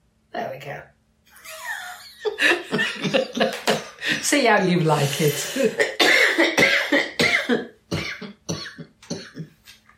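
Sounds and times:
speech: 0.5 - 1.0, 2.3 - 6.7, 7.5 - 7.7
laughter: 1.4 - 4.2
harsh coughing fit: 2.7 - 4.2, 5.4 - 9.6.

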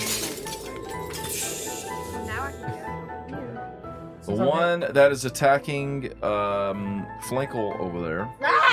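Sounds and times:
frozen creature shattering like ice: 0.0 - 2.4
speech: 4.3 - 8.6.

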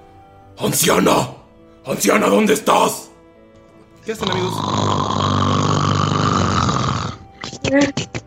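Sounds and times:
speech: 0.6 - 3.1, 4.0 - 5.2, 7.7 - 8.2
loud rasping snore: 4.1 - 8.2.

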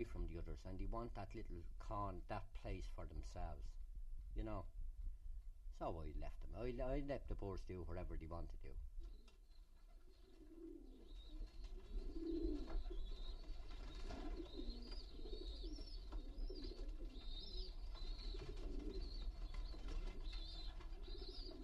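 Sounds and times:
speech: 0.0 - 3.8, 4.4 - 4.8, 5.7 - 8.9
pigeons cooing: 9.0 - 21.6.

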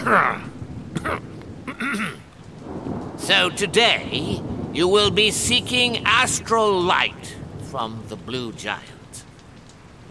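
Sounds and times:
man's brief voiced grunts: 0.0 - 2.2
speech: 0.0 - 2.2, 3.2 - 8.9
man's raspy cough: 0.0 - 2.3
faint hiss of noise: 0.0 - 10.0.

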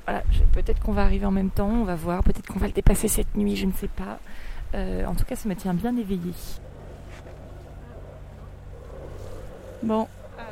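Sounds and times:
wind noise: 0.0 - 10.5
speech: 0.1 - 6.7, 9.8 - 10.2
sailboat engine droning: 5.2 - 10.5.

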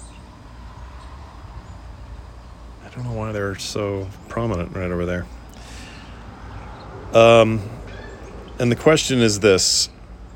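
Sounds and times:
birds chirping outdoors: 0.0 - 10.3
steady outdoor rumble: 0.0 - 10.3
speech: 2.9 - 5.4, 7.1 - 7.8, 8.6 - 10.0.

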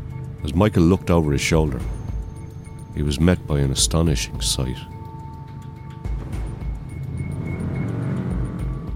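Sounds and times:
motorcycle engines of bikers leading a funeral cortege humming: 0.0 - 8.9
speech: 0.4 - 2.0, 2.9 - 5.0.

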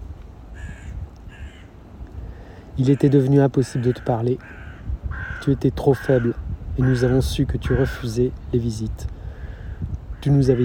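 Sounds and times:
crow cawing: 0.5 - 1.7, 2.8 - 8.1, 9.6 - 10.6
speech: 2.8 - 4.6, 5.4 - 9.1, 10.2 - 10.6.

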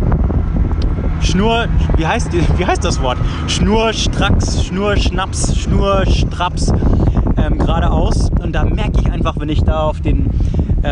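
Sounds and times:
wind roar in a car cabin driven fast on the motorway: 0.0 - 10.9
speech: 1.3 - 10.9.

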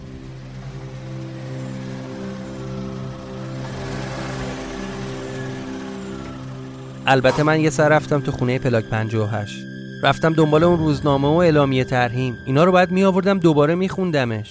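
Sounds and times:
car engine humming as car is driven into a yard and parked: 0.0 - 13.0
speech: 7.1 - 14.4.

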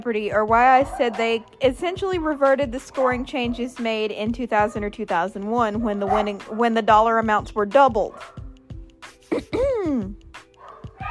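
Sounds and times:
speech: 0.0 - 8.4, 9.3 - 10.2
dog barking: 0.8 - 1.6, 5.8 - 6.6, 10.6 - 11.0
dog yelping: 0.8 - 1.6, 5.7 - 6.7, 8.1 - 8.4, 10.6 - 11.0.

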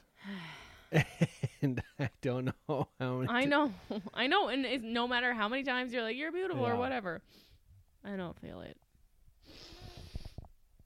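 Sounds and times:
speech: 0.9 - 8.8
wet nasal sniffle: 9.4 - 10.5.

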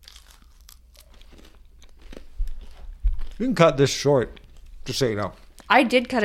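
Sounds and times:
crispy coconut cookie being bitten and chewed: 0.0 - 4.7
speech: 3.4 - 6.2.

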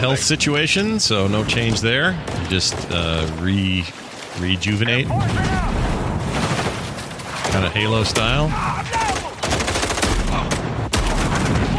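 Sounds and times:
speech: 0.0 - 6.4, 7.5 - 9.0
shotgun blasts in a video game demo: 5.2 - 11.7.

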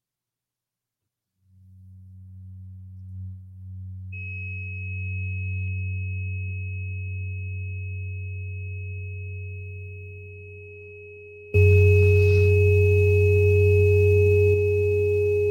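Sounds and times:
417 Hz sine tone: 2.2 - 15.4
higher pure tone: 8.8 - 15.4.

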